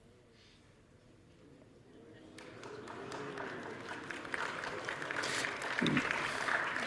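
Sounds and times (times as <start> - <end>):
audience applauding with many hands clapping: 2.4 - 6.8.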